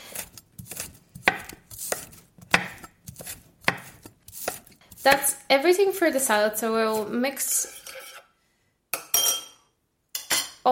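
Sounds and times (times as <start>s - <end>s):
knife finely chopping cucumber and shallot: 0.0s - 5.4s
speech: 5.0s - 7.7s.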